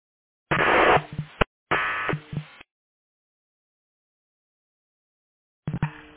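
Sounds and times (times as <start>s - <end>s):
crackly fire dispatch radio transmission bursts with heavy static: 0.5s - 2.7s.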